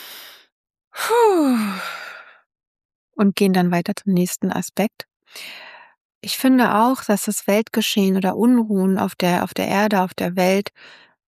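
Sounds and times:
person breathing in and out deeply: 0:00.0 - 0:02.5
voiced sigh: 0:01.0 - 0:02.4
speech: 0:03.2 - 0:11.1.

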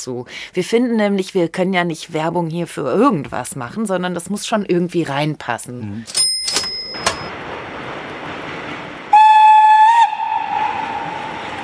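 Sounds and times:
speech: 0:00.0 - 0:06.6
train running along the rails: 0:06.1 - 0:11.6
loud tonal train whistle blast: 0:09.1 - 0:11.6.

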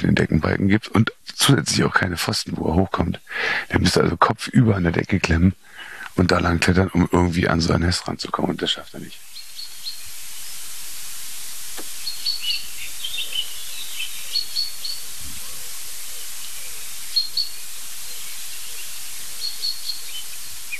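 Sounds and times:
speech: 0:00.0 - 0:09.2
steady hiss: 0:00.0 - 0:20.7
agitated chaffinches calling: 0:05.0 - 0:20.7.

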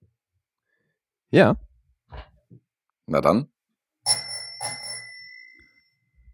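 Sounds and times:
speech: 0:01.3 - 0:01.6, 0:03.1 - 0:03.5
bright metallic bell ringing: 0:04.1 - 0:06.3.

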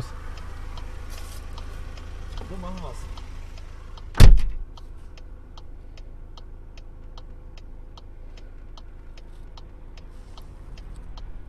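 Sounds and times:
low steady rumble inside a stopped car on a country road: 0:00.0 - 0:11.4
speech: 0:02.5 - 0:03.2
heavy thud inside a stopped car: 0:04.2 - 0:04.6.

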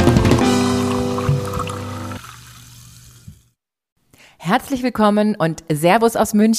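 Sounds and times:
fizzy lemonade pouring: 0:00.2 - 0:03.4
speech: 0:04.5 - 0:06.5.

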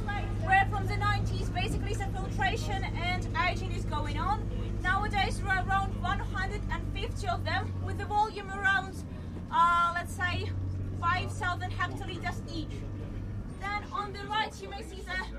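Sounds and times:
several people chatting on a bus: 0:00.0 - 0:12.9, 0:13.6 - 0:15.3
moving bus engine rumble: 0:00.0 - 0:15.3.

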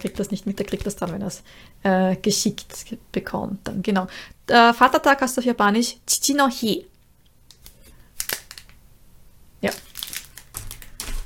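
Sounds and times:
speech: 0:00.0 - 0:06.9, 0:09.6 - 0:09.8
traditional Japanese washi paper envelope crinkling and rustling: 0:07.5 - 0:08.8, 0:09.6 - 0:11.2.

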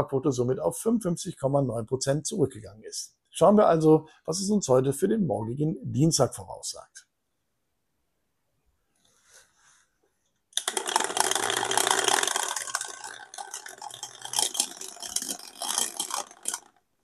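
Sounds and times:
speech: 0:00.0 - 0:07.0
die being rolled and rattling: 0:10.6 - 0:16.8.

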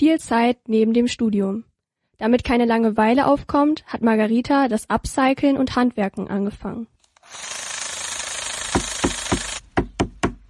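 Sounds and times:
speech: 0:00.0 - 0:07.6
power tool sanding solid wood furniture: 0:07.1 - 0:09.8
sharp rhythmic knocks: 0:08.7 - 0:10.4.

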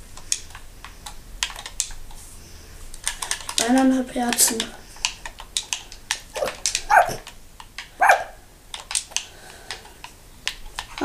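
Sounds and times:
speech: 0:03.6 - 0:04.8
dog barking: 0:06.4 - 0:07.2, 0:08.0 - 0:08.4.

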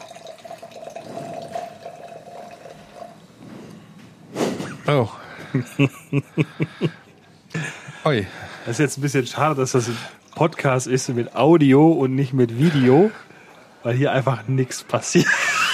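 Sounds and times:
tonic water poured from a can into a glass: 0:00.0 - 0:03.2, 0:09.3 - 0:13.6
laughter: 0:04.6 - 0:08.2, 0:15.2 - 0:15.7
speech: 0:04.9 - 0:07.0, 0:08.0 - 0:13.2, 0:13.8 - 0:15.4.

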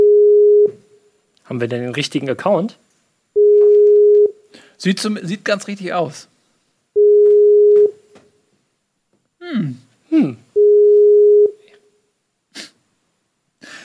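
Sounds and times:
long steady electronic phone ringback tones: 0:00.0 - 0:00.8, 0:03.4 - 0:04.4, 0:07.0 - 0:08.0, 0:10.6 - 0:11.6
speech: 0:01.5 - 0:02.8, 0:04.8 - 0:06.3, 0:09.5 - 0:10.4
person murmuring: 0:09.4 - 0:10.5.

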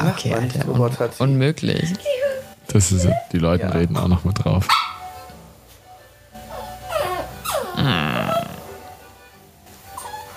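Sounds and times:
speech: 0:00.1 - 0:02.1, 0:02.7 - 0:04.9
small Jack Russell Terrier puppy growling: 0:06.5 - 0:08.8
small Jack Russell Terrier puppy whimpering and whining: 0:06.5 - 0:08.8, 0:09.9 - 0:10.3.

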